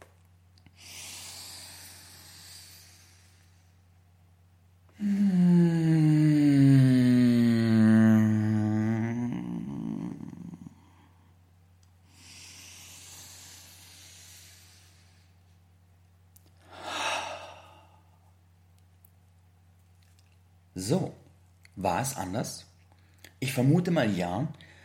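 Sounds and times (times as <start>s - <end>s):
person breathing: 0.7s - 3.8s, 4.9s - 11.4s, 12.0s - 15.5s, 16.6s - 18.3s, 24.6s - 24.8s
person moaning on the out-breath during a breathing exercise: 4.9s - 11.1s, 16.7s - 18.0s
speech: 22.0s - 22.6s, 23.5s - 24.6s.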